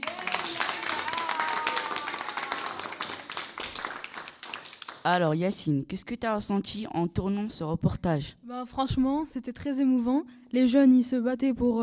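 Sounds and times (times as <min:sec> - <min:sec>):
room full of people applauding: 0:00.0 - 0:05.0
speech: 0:05.0 - 0:11.8.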